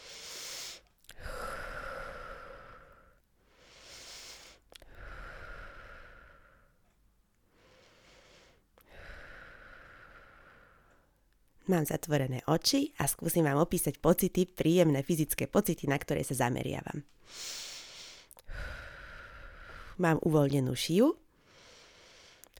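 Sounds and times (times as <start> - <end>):
slow relaxed breathing in and out during a relaxation exercise: 0.0 - 11.2, 17.2 - 20.0, 21.3 - 22.5
speech: 11.7 - 17.7, 20.0 - 21.2.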